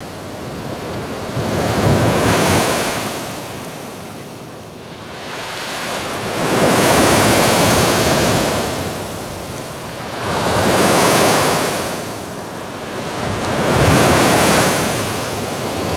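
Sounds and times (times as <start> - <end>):
ocean waves crashing on a beach: 0.0 - 15.9.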